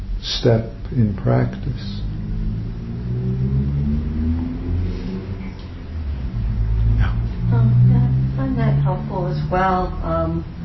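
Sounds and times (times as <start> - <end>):
speech: 0.2 - 2.1, 8.6 - 10.6
road traffic rumbling past: 1.2 - 10.6.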